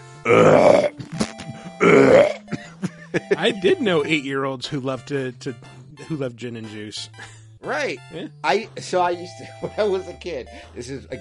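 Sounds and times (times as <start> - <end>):
speech: 0.2 - 0.8, 3.2 - 11.1
deep rumbling belches: 0.2 - 1.1, 1.8 - 2.6.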